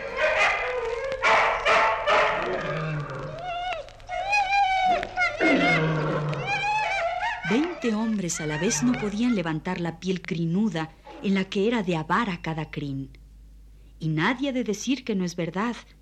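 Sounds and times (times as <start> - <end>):
dogs yelping and whining: 0.0 - 9.6
about a hundred hungry dogs growling and snarling: 5.4 - 6.8
speech: 7.9 - 13.2, 14.0 - 16.0.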